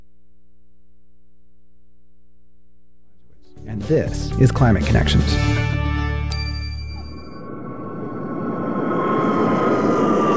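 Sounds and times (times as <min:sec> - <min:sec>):
speech: 0:03.6 - 0:05.8
brief chime: 0:06.3 - 0:07.5
jet airplane engine as plane lands and taxis: 0:07.7 - 0:10.3.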